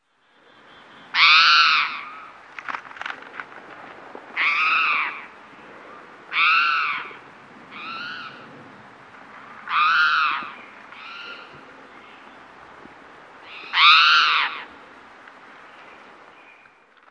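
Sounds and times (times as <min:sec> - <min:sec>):
distant bird cawing: 0:00.4 - 0:02.4, 0:04.3 - 0:08.5, 0:09.5 - 0:12.2, 0:13.4 - 0:14.8.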